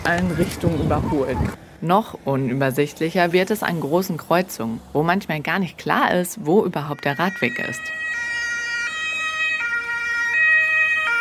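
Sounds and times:
low rumble of city traffic: 0.0 - 11.1
speech: 0.1 - 8.0
ambulance siren wailing with stacked switching tones: 6.8 - 11.1.

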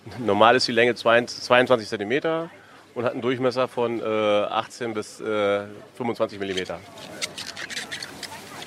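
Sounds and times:
faint low murmur: 0.0 - 8.6
speech: 0.1 - 7.1
fresh asparagus spears squeaking when rubbed together: 6.4 - 8.6.

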